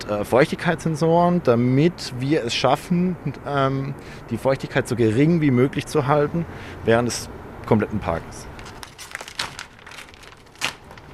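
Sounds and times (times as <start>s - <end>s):
speech: 0.0s - 8.5s
glued-on plastic film peeled from an aircraft engine: 8.5s - 11.1s.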